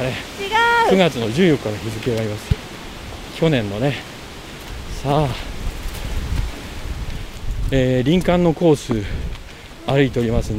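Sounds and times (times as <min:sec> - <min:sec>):
speech: 0:00.0 - 0:02.6, 0:03.4 - 0:04.1, 0:05.0 - 0:05.5, 0:07.7 - 0:10.5
distant tree leaves rustling in wind on a forest trail: 0:00.0 - 0:10.5.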